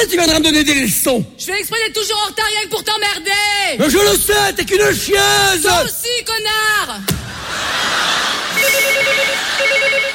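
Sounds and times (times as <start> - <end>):
speech: 0.0 - 7.4
laughter: 7.0 - 10.1
telephone ringing with a warbling electronic tone: 8.6 - 10.1.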